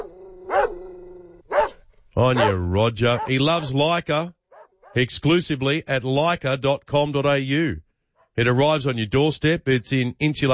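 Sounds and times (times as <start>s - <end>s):
dog barking: 0.0s - 3.9s, 4.5s - 5.0s
speech: 2.2s - 4.4s, 5.0s - 7.8s, 8.4s - 10.5s.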